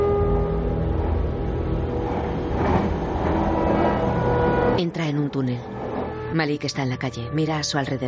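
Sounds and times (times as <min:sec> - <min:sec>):
commuter train rolling along: 0:00.1 - 0:06.5
commuter train clatter and clicks: 0:01.9 - 0:04.8
speech: 0:06.3 - 0:08.0.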